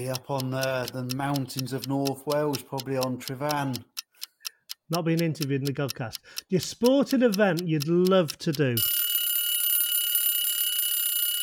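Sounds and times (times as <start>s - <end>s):
speech: 0.0s - 3.9s, 4.9s - 9.0s
quiz countdown clock electronic alarm ringing: 8.8s - 11.4s.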